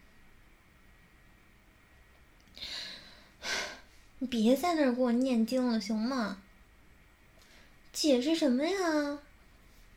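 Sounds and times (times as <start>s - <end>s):
wet airy sniffling through the nose while crying: 2.6s - 4.0s
speech: 4.2s - 6.4s, 8.0s - 9.3s.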